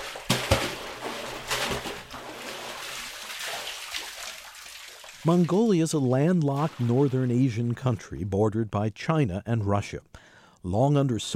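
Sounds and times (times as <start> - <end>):
water sloshing as a man draws it from a deep well in Mongolia's Gobi Desert: 0.0 - 8.2
speech: 5.2 - 11.3.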